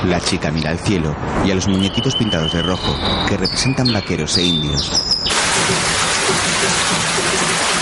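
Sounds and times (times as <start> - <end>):
speech: 0.1 - 5.1
heavy rain pouring: 5.3 - 7.7.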